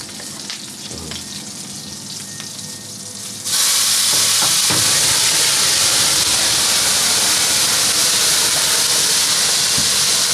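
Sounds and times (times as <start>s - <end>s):
scallops being flambéed and seared in a pan: 3.3s - 10.3s.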